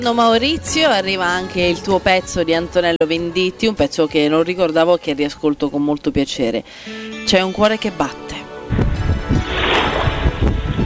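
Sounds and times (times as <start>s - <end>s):
speech: 0.0s - 8.3s
wind buffeting a microphone: 8.7s - 10.8s.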